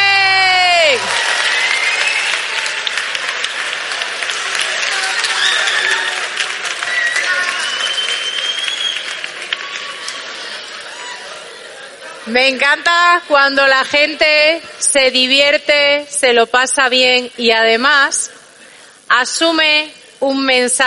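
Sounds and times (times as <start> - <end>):
scattered cheers and whoops: 0.0 - 11.5
applause from a large audience: 0.7 - 12.3
laughter: 9.1 - 13.2
speech: 12.3 - 18.4, 19.1 - 20.8.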